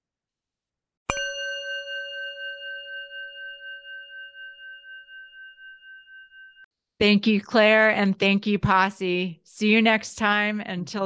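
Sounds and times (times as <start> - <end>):
single bell ringing: 1.1 - 6.7
speech: 7.0 - 11.0.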